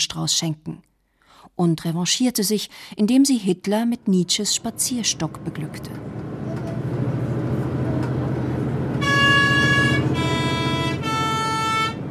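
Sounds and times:
speech: 0.0s - 0.8s, 1.5s - 6.2s
bus engine rumbling and straining up a mountain pass: 4.0s - 12.0s
bus horn sounding a three-note melodic call: 8.9s - 12.0s.

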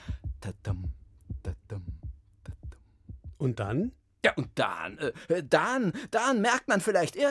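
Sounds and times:
heartbeat of a mother heard from inside the womb: 0.0s - 4.0s
speech: 3.4s - 7.2s.

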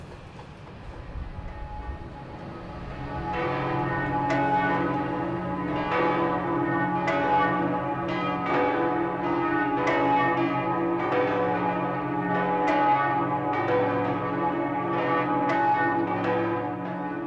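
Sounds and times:
large church bell ringing: 1.3s - 17.2s.

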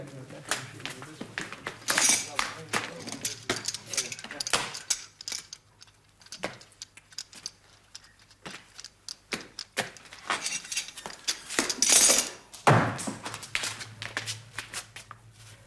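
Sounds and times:
low steady hum: 0.0s - 15.6s
rattling and clicking door handling noises: 0.6s - 12.4s.

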